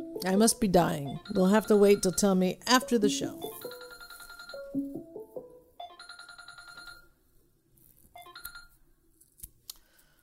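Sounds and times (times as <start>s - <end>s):
speech: 0.2s - 3.8s
several phone ringtones with electronic melodies and trilling rings: 1.0s - 2.4s, 3.2s - 5.1s, 5.8s - 7.2s, 8.2s - 8.8s.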